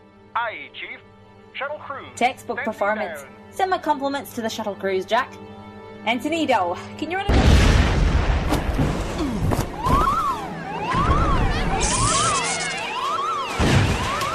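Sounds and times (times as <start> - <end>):
speech: 0.4 - 7.7
heavy explosive booms and crashing impacts in the main shuttle bay: 7.3 - 10.1, 13.5 - 14.3
warbling alarm siren whooping: 9.7 - 14.3.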